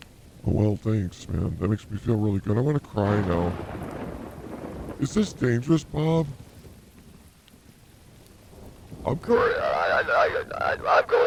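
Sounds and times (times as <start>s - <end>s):
steady rain hissing in a thunderstorm: 0.0s - 11.2s
speech: 0.5s - 3.8s, 5.0s - 6.4s, 9.0s - 11.2s
low rumble of thunder: 2.8s - 11.2s
voice murmuring beneath the downpour: 9.1s - 11.2s.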